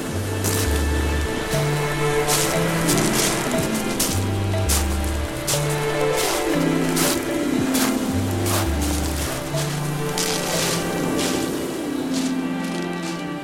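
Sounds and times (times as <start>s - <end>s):
low stepping bass tones like music playing: 0.0s - 10.1s
waves breaking on the shore at a seafront: 0.0s - 13.4s.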